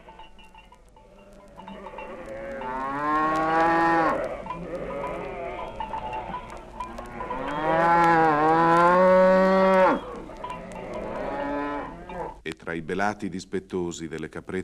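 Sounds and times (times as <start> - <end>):
cows mooing with long moos: 1.0 - 12.4
speech: 12.8 - 14.6.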